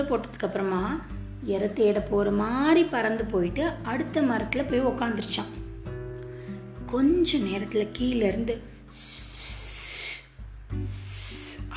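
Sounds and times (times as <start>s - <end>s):
speech: 0.0s - 5.6s, 6.9s - 9.2s
voice imitating a snake slithering with hissing breaths: 8.9s - 11.7s.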